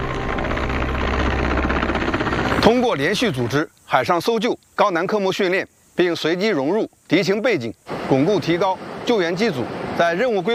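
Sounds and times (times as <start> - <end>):
rescue helicopter rotor and engine climbing while hoisting a person from the sea: 0.0 - 3.6
speech: 2.6 - 10.5.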